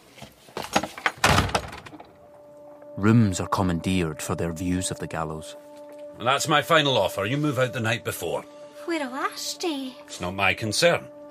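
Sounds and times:
door rattling as it settles in the frame: 0.7s - 2.1s
door slamming shut: 1.0s - 2.1s
speech: 3.0s - 11.2s.

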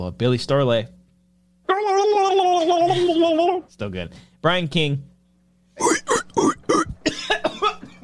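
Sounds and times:
speech: 0.0s - 1.0s, 2.6s - 5.1s
person coughing harshly: 5.8s - 8.0s.

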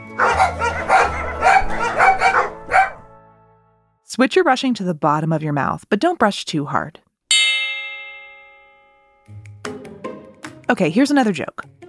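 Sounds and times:
several dogs barking: 0.0s - 3.1s
speech: 4.2s - 7.1s, 10.7s - 11.8s.

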